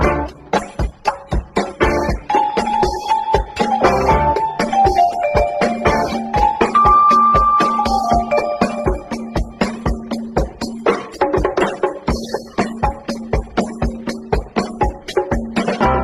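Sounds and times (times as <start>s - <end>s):
guitar in phonk loops: 0.0s - 16.0s
vibraphone in phonk loops: 2.3s - 10.3s.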